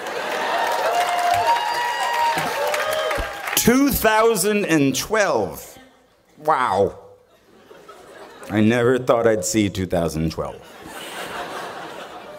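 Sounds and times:
crowd applauding and cheering: 0:00.0 - 0:04.2
speech: 0:03.6 - 0:05.7, 0:06.4 - 0:07.0, 0:08.5 - 0:10.8
man speaking loudly: 0:03.6 - 0:05.8, 0:06.4 - 0:07.2, 0:08.5 - 0:10.7
laughter: 0:07.3 - 0:08.8, 0:10.6 - 0:12.3.

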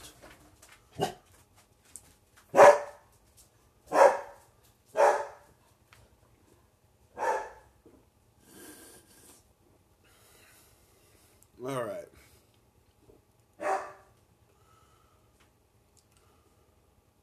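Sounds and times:
dog barking: 0:01.0 - 0:01.2, 0:02.5 - 0:03.0, 0:03.9 - 0:05.5, 0:07.2 - 0:07.7, 0:13.6 - 0:14.1
speech: 0:01.0 - 0:01.2.

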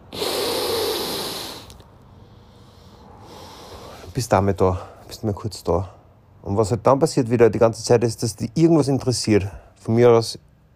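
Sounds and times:
deep breath drawn in: 0:00.0 - 0:04.2
speech: 0:04.2 - 0:10.5.

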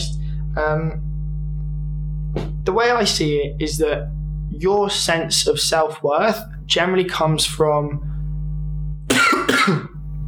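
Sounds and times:
steady low hum: 0:00.0 - 0:10.2
speech: 0:00.6 - 0:01.1, 0:02.6 - 0:08.1, 0:09.6 - 0:09.9
harsh coughs from a dry throat: 0:09.1 - 0:10.0.

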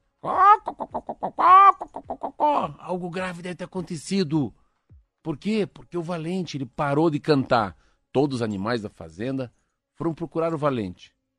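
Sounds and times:
rooster squawking and clucking in alarm: 0:00.2 - 0:02.5
speech: 0:00.2 - 0:04.6, 0:05.2 - 0:11.2.

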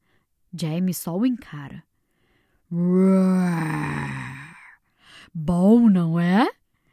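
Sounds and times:
speech: 0:00.5 - 0:01.9, 0:02.7 - 0:04.2, 0:05.3 - 0:06.6
person imitating a lion's roar: 0:02.7 - 0:04.8.

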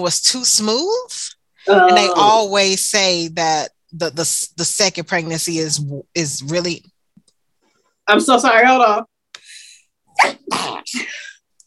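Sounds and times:
speech: 0:00.0 - 0:07.0, 0:08.1 - 0:09.1, 0:10.2 - 0:11.2
person sneezing: 0:10.2 - 0:11.2.

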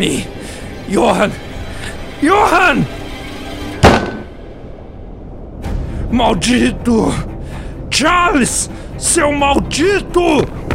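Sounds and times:
speech: 0:00.0 - 0:01.5, 0:02.2 - 0:03.0, 0:06.1 - 0:07.3, 0:08.0 - 0:10.6
gunshots with lingering echo in a drama scene: 0:03.8 - 0:04.4.

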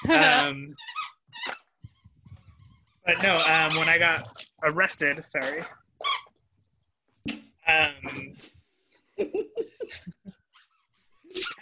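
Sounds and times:
speech: 0:00.0 - 0:01.6, 0:03.1 - 0:05.8, 0:07.2 - 0:08.6, 0:09.2 - 0:10.1
squeaky toy squealing as a dog plays with it: 0:00.0 - 0:04.3, 0:05.5 - 0:06.3, 0:10.5 - 0:11.6
laughter: 0:09.2 - 0:10.4.

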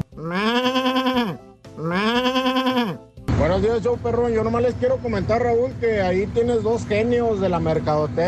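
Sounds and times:
sheep bleating angrily: 0:00.0 - 0:03.0
speech: 0:03.6 - 0:08.2.

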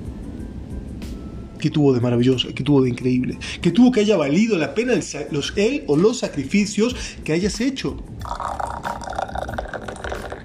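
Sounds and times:
speech: 0:01.6 - 0:08.5
coffee being poured into a cup: 0:08.2 - 0:10.4.

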